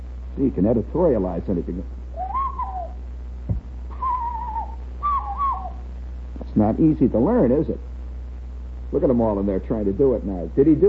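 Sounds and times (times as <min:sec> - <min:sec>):
steady low hum: 0:00.0 - 0:10.8
speech: 0:00.4 - 0:02.0, 0:06.6 - 0:07.9, 0:08.9 - 0:10.8
hollow breathy hand whistle imitating a cuckoo call: 0:02.2 - 0:03.0, 0:03.9 - 0:05.8
brief knock: 0:03.5 - 0:03.7.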